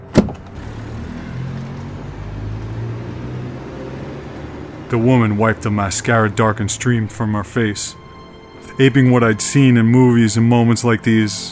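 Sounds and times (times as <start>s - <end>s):
car door shutting: 0.1s - 0.6s
speech: 4.9s - 8.1s, 8.8s - 11.5s.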